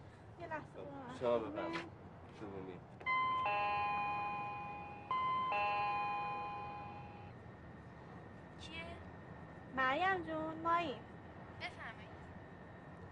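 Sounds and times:
speech: 0.5s - 3.8s, 9.8s - 11.1s
doorbell chiming at a closed door: 3.1s - 7.3s.

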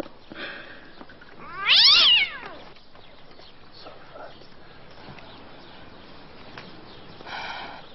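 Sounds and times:
hungry cat meowing while being fed kebab: 1.4s - 2.6s.

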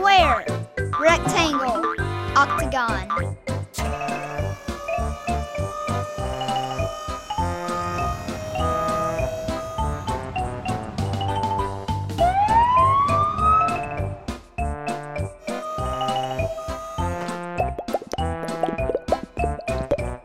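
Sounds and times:
bright bouncy musical backing: 0.0s - 20.2s
fire truck siren wailing: 3.8s - 14.3s, 15.2s - 17.6s.

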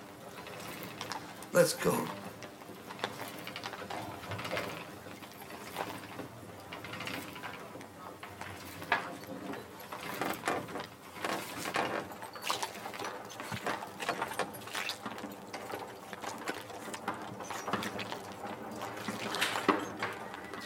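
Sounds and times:
speech: 1.5s - 2.2s
weaving loom clattering in a linen workshop: 2.9s - 20.6s.

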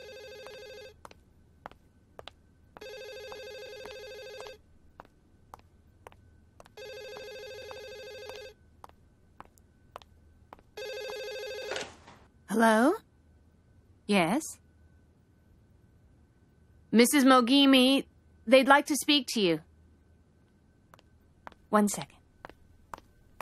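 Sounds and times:
telephone ringing in electronic bursts: 0.0s - 1.0s, 2.8s - 4.6s, 6.7s - 8.6s, 10.8s - 12.0s
speech: 12.6s - 13.0s, 14.1s - 14.6s, 17.0s - 19.7s, 21.7s - 22.2s.

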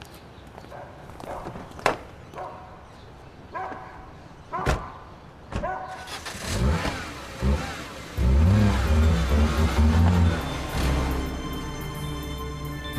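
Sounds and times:
dog barking: 0.7s - 1.6s, 2.4s - 2.8s, 3.5s - 5.0s, 5.6s - 6.0s
car engine revving and pulling away: 5.9s - 12.7s.

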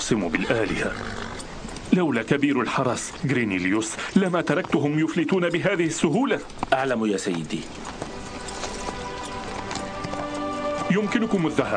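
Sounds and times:
speech: 0.1s - 1.4s, 2.0s - 8.0s, 10.9s - 11.7s
horse hooves clip-clopping as the animal walks: 0.4s - 11.7s
sustained tonal background: 1.5s - 11.7s.

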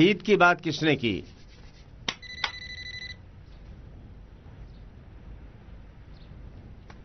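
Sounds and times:
speech: 0.0s - 1.4s
telephone ringing with an electronic trill: 2.2s - 3.2s.

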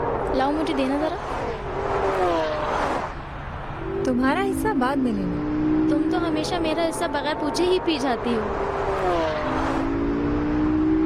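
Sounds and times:
car engine droning while driven fast: 0.0s - 11.0s
speech: 0.3s - 2.3s, 4.1s - 9.4s.

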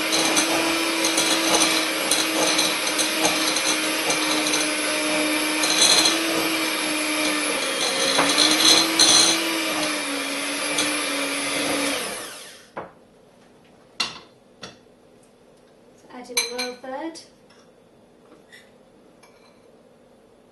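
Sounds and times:
electric mixer on low speed mixing thick apple batter: 0.0s - 12.7s.

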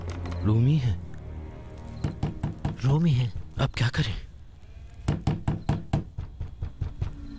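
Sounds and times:
speech: 0.4s - 1.1s, 2.8s - 4.3s
knocking on a door: 2.0s - 2.8s, 5.1s - 7.2s.

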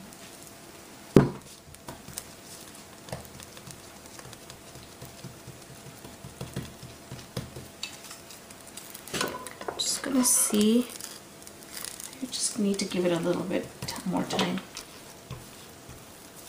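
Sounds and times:
soft food sizzling in a hot pan: 0.0s - 16.4s
utensils tapping and clicking: 3.0s - 11.1s, 11.8s - 16.4s
speech: 10.2s - 11.0s, 12.6s - 14.7s.

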